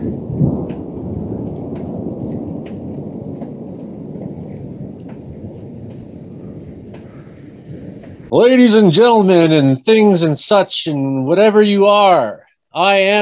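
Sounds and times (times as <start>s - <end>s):
water drips: 0.0s - 8.3s
thunder rumbling in a thunderstorm: 0.0s - 10.6s
rain falling: 0.0s - 12.3s
speech: 8.3s - 13.2s.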